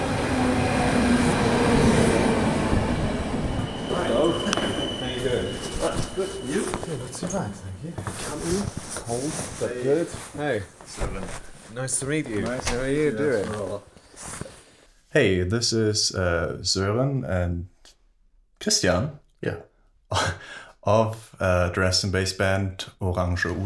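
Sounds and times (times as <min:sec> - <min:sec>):
train arriving rumbling and rattling: 0:00.0 - 0:07.8
speech: 0:07.2 - 0:14.5, 0:15.1 - 0:17.7, 0:18.6 - 0:23.6.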